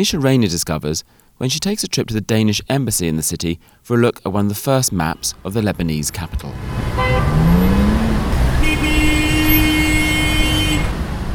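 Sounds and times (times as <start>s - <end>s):
speech: 0.0s - 7.5s
busy jammed street traffic rumbling in Beirut Lebanon: 5.1s - 11.3s
car horn blaring in a long sustained honk: 6.8s - 11.2s.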